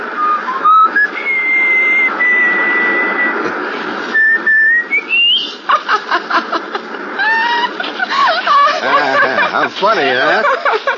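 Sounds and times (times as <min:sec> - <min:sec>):
person whistling a short melody: 0:00.2 - 0:03.3, 0:04.1 - 0:05.5
laughter: 0:05.5 - 0:10.9.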